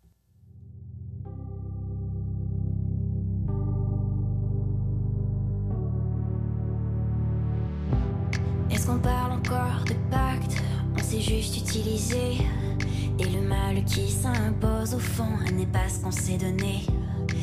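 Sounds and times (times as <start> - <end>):
warm sustained synth chords in a pop song intro: 0.7 - 17.4
speech: 8.9 - 17.4.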